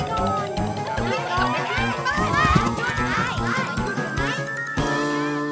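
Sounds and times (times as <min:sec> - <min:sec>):
children's running footsteps thudding across a house floor: 0:00.0 - 0:03.9
excited voices of children chasing each other: 0:00.0 - 0:05.4.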